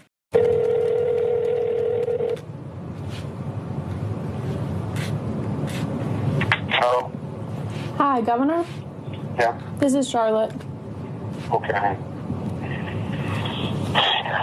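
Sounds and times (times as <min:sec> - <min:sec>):
telephone dial tone over a noisy line: 0:00.4 - 0:02.4
rumbling hiss on a phone line: 0:01.2 - 0:14.4
speech: 0:08.2 - 0:08.8, 0:09.4 - 0:10.6, 0:11.5 - 0:12.1.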